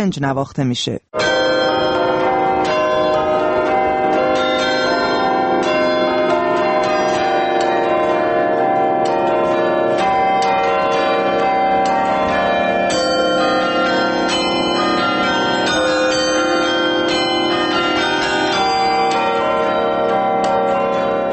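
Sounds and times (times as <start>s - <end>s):
speech: 0.0s - 1.4s
church bells of different pitches pealing: 1.2s - 21.3s.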